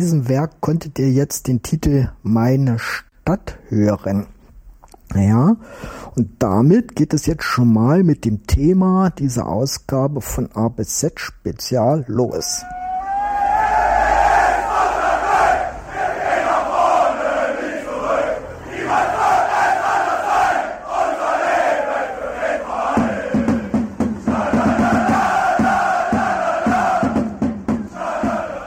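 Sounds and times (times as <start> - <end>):
speech: 0.0 - 4.4, 5.1 - 12.8
football fans chanting in a stadium at a home match: 12.8 - 28.6
regular rhythmic beats: 22.3 - 28.6.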